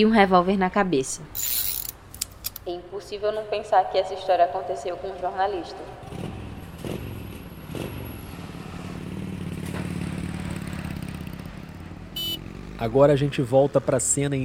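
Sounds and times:
speech: 0.0 - 1.7, 2.7 - 6.1, 12.8 - 14.4
car and motorcycle engines passing on a busy city street: 5.6 - 14.4.

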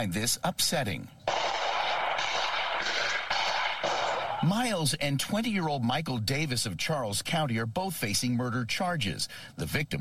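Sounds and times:
speech: 0.0 - 1.2, 4.4 - 9.9
loud outdoor noise: 1.3 - 4.5
gunshots exchanged between people in two cars captured by a doorbell camera: 1.3 - 4.6.

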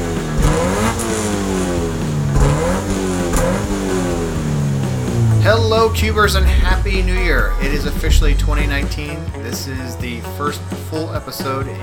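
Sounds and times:
car engine revving: 0.0 - 11.0
speech: 5.6 - 11.8.

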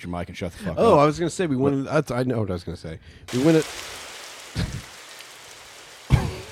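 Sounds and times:
speech: 0.0 - 3.9
steady hiss of falling rain: 3.3 - 6.5.

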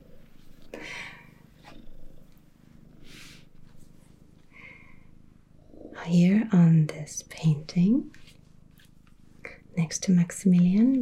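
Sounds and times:
soft rustles: 0.0 - 4.6, 7.2 - 10.9
cat purring: 0.0 - 10.9
breathy sounds: 0.6 - 2.2, 4.5 - 5.2
speech: 6.1 - 8.2, 9.8 - 10.9.

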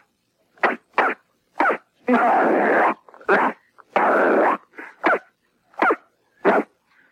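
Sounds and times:
person imitating a dog with yaps, barks and growling barks: 0.6 - 3.6, 4.4 - 6.7.

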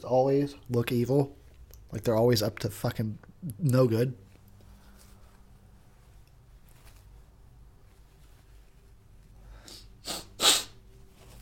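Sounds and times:
speech: 0.0 - 4.2
person sniffing: 9.5 - 10.8
person sneezing: 9.6 - 10.8.

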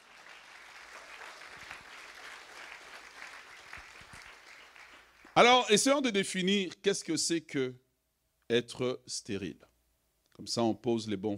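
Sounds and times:
congregation applauding during a church service: 0.0 - 5.7
speech: 5.4 - 7.8, 8.5 - 9.7, 10.4 - 11.3.

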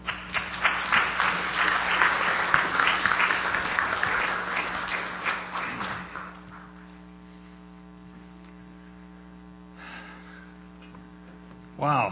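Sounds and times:
large church audience applauding a guest speaker: 0.0 - 7.0.

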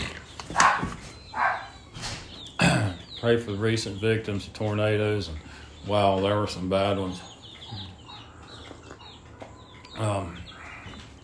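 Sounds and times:
male dog barking, muffled: 0.5 - 1.8
speech: 3.2 - 7.8.

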